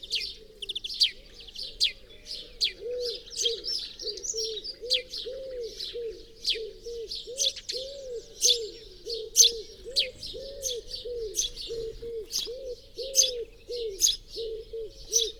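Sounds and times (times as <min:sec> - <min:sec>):
bird soft low cooing notes: 0:02.7 - 0:15.3
house sparrow Passer domesticus harsh chirps: 0:08.3 - 0:15.3.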